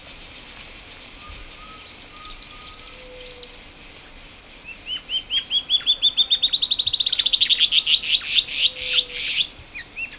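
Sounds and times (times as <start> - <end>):
Band-tailed Antbird Hypocnemoides maculicauda song: 1.2 - 10.1
faint bird calls: 1.2 - 10.1.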